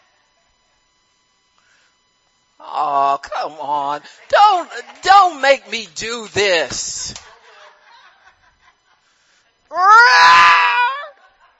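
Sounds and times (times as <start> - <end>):
speech: 2.6 - 7.2
laughter: 4.0 - 9.1
person screaming into a pillow: 9.7 - 11.2.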